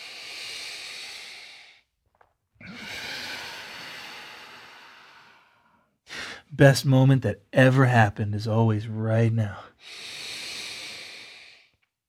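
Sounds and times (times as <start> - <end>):
deep rhythmic breathing during a yoga flow: 0.0 - 6.6, 9.4 - 11.9
speech: 6.5 - 10.0.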